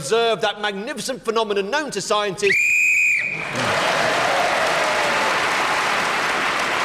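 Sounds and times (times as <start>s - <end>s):
speech: 0.0s - 4.1s
short shrill whistle blast blown to end a round: 2.5s - 3.5s
loud steady applause from a large audience: 3.3s - 6.8s.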